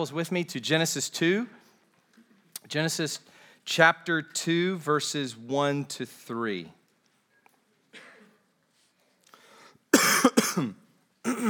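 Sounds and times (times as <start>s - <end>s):
speech: 0.0s - 1.6s, 2.7s - 6.8s, 10.6s - 11.4s
preacher coughing during a church sermon: 9.9s - 11.4s
preacher clearing throat during a church sermon: 10.0s - 11.4s.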